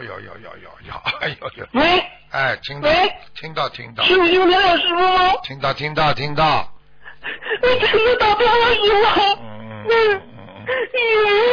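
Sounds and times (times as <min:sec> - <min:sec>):
speech: 0:00.1 - 0:11.5
woman crying and sobbing: 0:01.2 - 0:02.2, 0:07.0 - 0:11.5.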